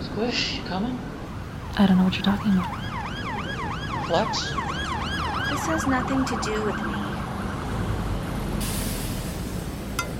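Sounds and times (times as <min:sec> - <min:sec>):
busy street traffic rumbling: 0:00.0 - 0:10.1
speech: 0:00.2 - 0:01.2, 0:01.8 - 0:02.9, 0:04.1 - 0:04.8, 0:05.5 - 0:07.0
air brakes hissing: 0:08.6 - 0:10.0.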